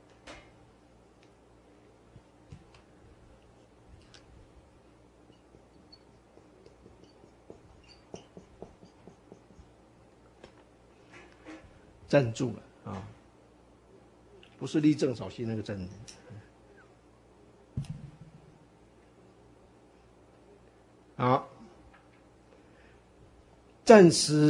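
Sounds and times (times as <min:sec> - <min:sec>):
writing on a board: 0:05.3 - 0:09.8
speech: 0:12.1 - 0:12.7, 0:14.6 - 0:16.2, 0:23.9 - 0:24.4.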